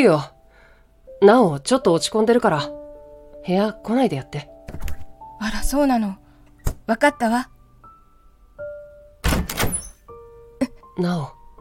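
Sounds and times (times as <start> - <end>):
speech: 0.0 - 0.3, 1.2 - 2.8, 3.4 - 4.8, 5.4 - 6.2, 6.9 - 7.5, 11.0 - 11.4
heavier door clunk: 9.2 - 10.0
door creaking open: 9.2 - 10.1.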